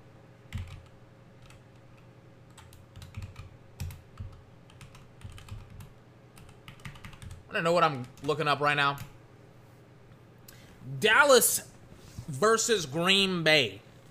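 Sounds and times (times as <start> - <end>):
low steady hum: 0.0 - 14.0
typing on a computer keyboard: 0.5 - 7.4
speech: 7.6 - 9.1, 11.0 - 11.7, 12.3 - 13.8.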